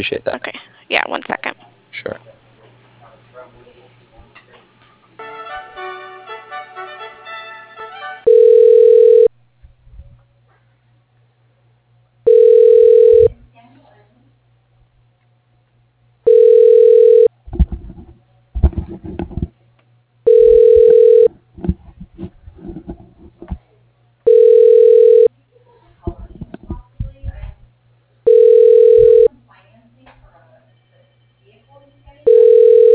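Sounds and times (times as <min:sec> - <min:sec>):
speech: 0:00.0 - 0:02.2
telephone ringback tone as a call is transferred to another line: 0:08.2 - 0:09.3, 0:12.3 - 0:13.3, 0:16.3 - 0:17.3, 0:20.3 - 0:21.3, 0:24.3 - 0:25.3, 0:28.3 - 0:29.3, 0:32.2 - 0:32.9.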